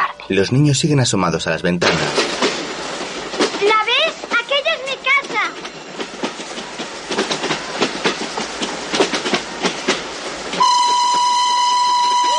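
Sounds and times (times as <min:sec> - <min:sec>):
speech: 0:00.3 - 0:02.4
train wheels clickety-clack over railway tracks: 0:01.8 - 0:12.3
train horn blast: 0:10.6 - 0:12.3.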